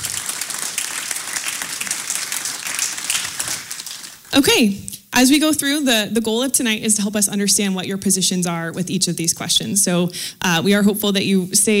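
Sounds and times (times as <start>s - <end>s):
audience applause: 0.0s - 4.3s
speech: 4.3s - 11.7s.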